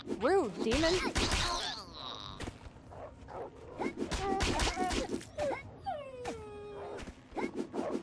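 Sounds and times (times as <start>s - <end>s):
speech: 0.2s - 1.6s
dying wolf yelps: 3.0s - 8.0s
dying wolf whimpering and whining: 4.8s - 7.1s.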